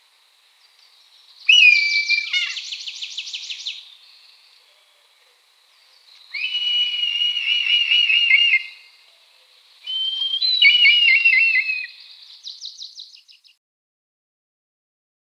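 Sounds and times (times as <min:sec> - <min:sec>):
red kite whistled calls, Milvus milvus, along a nature trail: 0:01.5 - 0:03.8, 0:06.4 - 0:09.0, 0:09.9 - 0:12.2.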